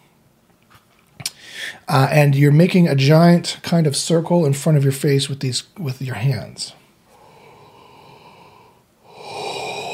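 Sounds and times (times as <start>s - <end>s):
speech: 1.7s - 6.8s
breathy yawn: 7.2s - 9.9s.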